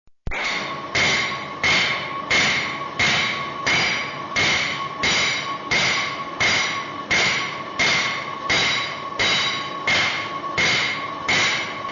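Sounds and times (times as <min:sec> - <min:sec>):
hammering metal with textured hammers: 0:00.3 - 0:11.8.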